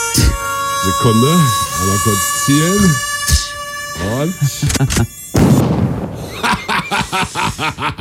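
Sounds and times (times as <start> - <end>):
high-pitched mosquito whine in a studio: 0.0 - 7.7
speech: 0.8 - 3.1, 4.0 - 5.2, 7.1 - 7.9
rhythmic breathy snickering laughter: 6.2 - 7.9.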